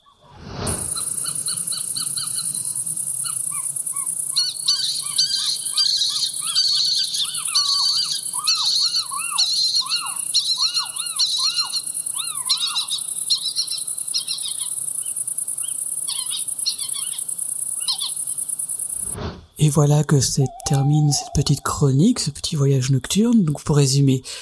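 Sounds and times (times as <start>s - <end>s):
steady insect chirr: 0.0s - 24.4s
family of little owls calling with squeals and yelping notes: 1.0s - 17.2s, 17.8s - 18.2s, 20.2s - 22.1s
speech: 19.7s - 24.4s.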